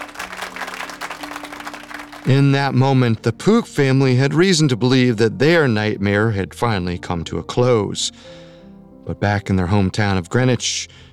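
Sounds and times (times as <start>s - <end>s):
crowd applauding indoors in a courtroom: 0.0s - 3.2s
speech: 2.2s - 8.4s, 9.0s - 11.1s.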